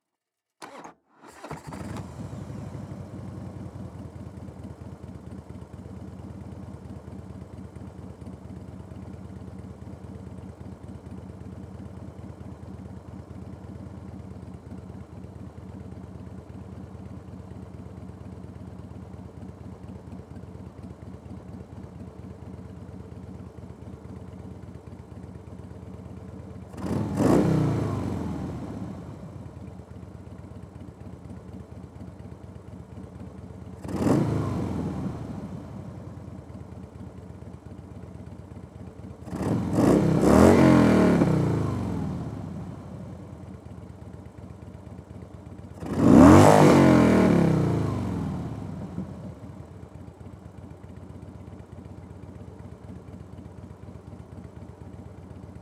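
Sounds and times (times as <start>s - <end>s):
2004 Harley Davidson Night Train motorcycle engine starting, idling and blipping, onboard: 0.6s - 55.6s.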